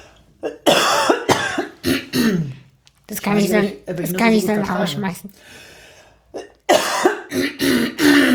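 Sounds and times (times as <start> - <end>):
person coughing: 0.4 - 2.7, 6.3 - 8.3
throat clearing: 0.4 - 2.7, 6.3 - 8.3
speech: 3.2 - 5.7.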